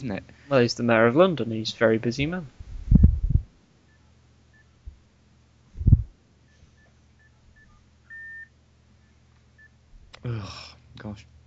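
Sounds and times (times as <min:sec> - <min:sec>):
speech: 0:00.0 - 0:02.6, 0:10.4 - 0:11.4
telephone keypad beeps: 0:06.8 - 0:08.5
steady telephone ringing tone: 0:07.2 - 0:08.5.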